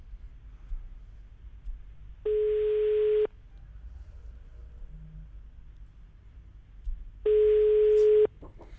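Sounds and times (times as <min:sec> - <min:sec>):
ringback tone of an unanswered outgoing telephone call: 0:02.3 - 0:03.3, 0:07.3 - 0:08.3.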